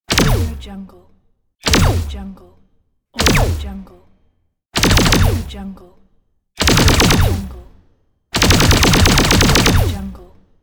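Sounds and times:
laser gun: 0.1s - 0.6s, 1.7s - 2.2s, 3.2s - 3.7s, 4.8s - 5.6s, 6.6s - 7.7s, 8.4s - 10.3s.

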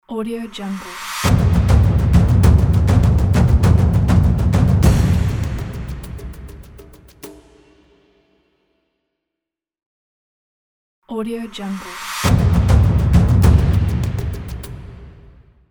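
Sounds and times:
epic drum percussion logo: 0.8s - 8.3s, 11.8s - 15.6s.

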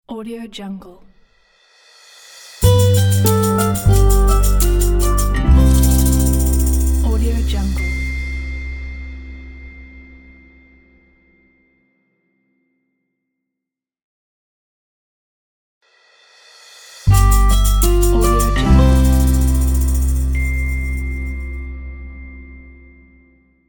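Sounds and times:
acoustic logo jingle: 2.6s - 10.8s, 17.0s - 23.4s.

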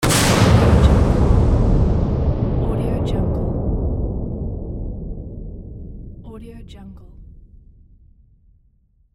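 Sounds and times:
explosion impact: 0.0s - 8.8s.

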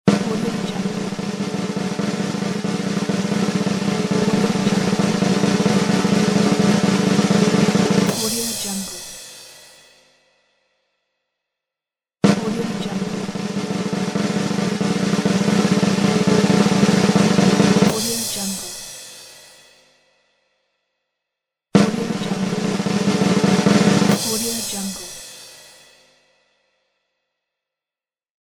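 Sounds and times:
drum roll: 0.1s - 9.7s, 12.2s - 19.3s, 21.8s - 25.8s.

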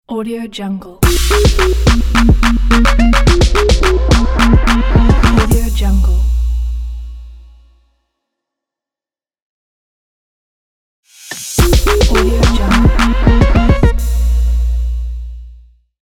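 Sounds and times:
trap music logo sting: 1.0s - 7.0s, 11.4s - 15.1s.

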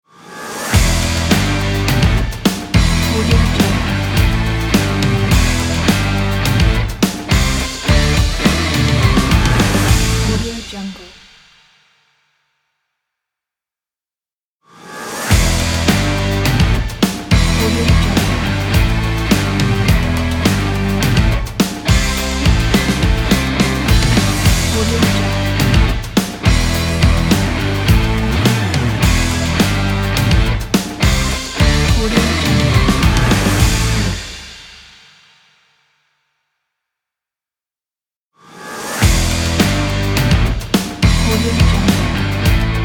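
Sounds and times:
sport rock music intro: 0.5s - 10.5s, 15.2s - 34.8s, 38.9s - 42.8s.

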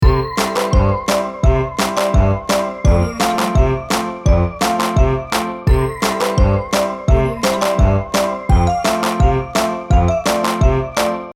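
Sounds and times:
Halloween fun music loop: 0.0s - 11.3s.

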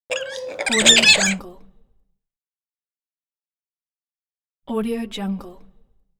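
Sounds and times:
spider monkey squeaks: 0.1s - 1.4s.

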